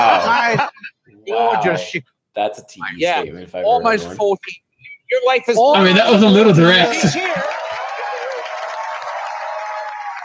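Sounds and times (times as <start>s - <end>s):
laughter: 0.0s - 1.9s, 5.6s - 7.6s
speech: 0.5s - 7.5s
audience clapping and cheering: 6.7s - 10.2s.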